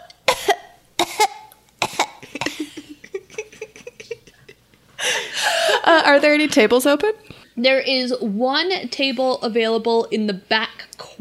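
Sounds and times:
person raspy throat-clearing: 0.0 - 4.2
person acting out coughing from peat fire smoke: 0.0 - 4.4
laughter: 2.2 - 6.0
speech: 5.8 - 11.1.

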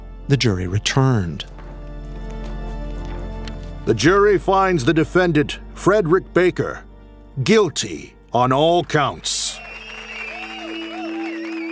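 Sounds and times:
speech: 0.3 - 1.5, 3.9 - 9.7
courtroom crowd clapping: 8.8 - 11.7
courtroom crowd cheering: 9.4 - 11.7.

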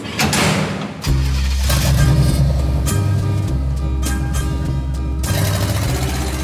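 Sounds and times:
metallic clunks of heavy cargo truck doors shutting on boxes of bottles: 0.0 - 1.9
cargo truck engine rumble: 1.0 - 6.4.

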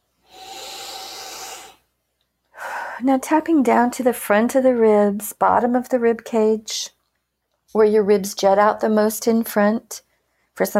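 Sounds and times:
big deep breath: 0.2 - 1.9, 2.5 - 3.0
speech: 3.0 - 7.0, 7.7 - 10.0, 10.6 - 10.7.

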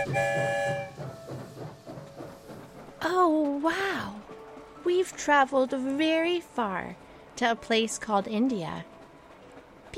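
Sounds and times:
train horn blast: 0.0 - 1.1
train rolling along and clattering out of a tunnel: 0.0 - 9.9
speech: 3.1 - 4.2, 4.8 - 8.9.

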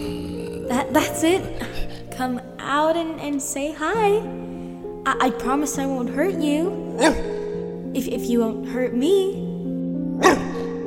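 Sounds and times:
speech: 0.7 - 1.6, 2.2 - 9.4
single short sharp dog bark: 7.0 - 7.4, 10.2 - 10.8.

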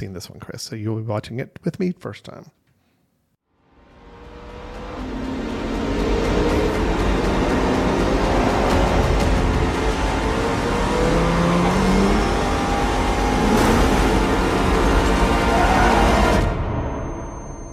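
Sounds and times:
speech: 0.0 - 2.6
car engines revving in a film trailer: 4.0 - 16.4.

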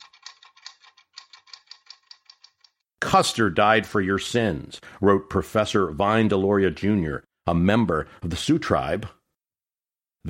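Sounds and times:
typewriter keys clacking: 0.0 - 2.8
speech: 3.1 - 9.2.

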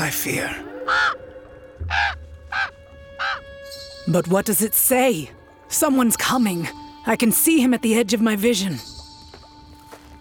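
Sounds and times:
speech: 0.1 - 2.2, 4.1 - 9.0
raven cawing: 0.6 - 3.8.

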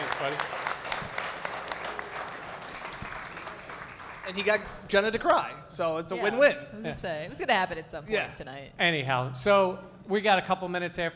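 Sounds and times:
audience applauding: 0.0 - 4.9
speech: 0.2 - 0.6, 4.3 - 11.1.

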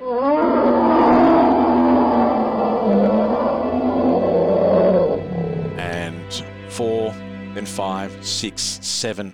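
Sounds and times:
deep growling roar through a forest: 0.0 - 6.6
speech: 7.6 - 9.3.

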